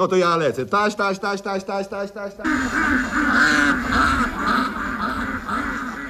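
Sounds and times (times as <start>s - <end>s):
speech: 0.0s - 4.6s
many ducks quacking: 2.1s - 6.0s.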